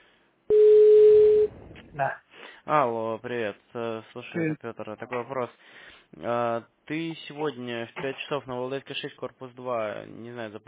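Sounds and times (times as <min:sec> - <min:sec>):
telephone busy signal after the line drops: 0:00.5 - 0:01.5
speech: 0:02.0 - 0:10.6.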